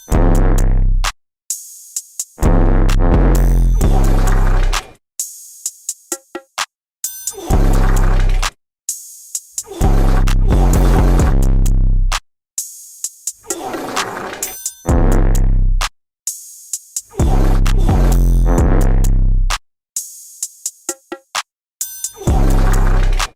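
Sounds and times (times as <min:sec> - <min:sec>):
fart sounds over a beat: 0:00.0 - 0:00.8, 0:02.4 - 0:04.9, 0:07.5 - 0:08.5, 0:09.8 - 0:11.8, 0:13.5 - 0:15.5, 0:17.2 - 0:19.2, 0:22.3 - 0:23.3.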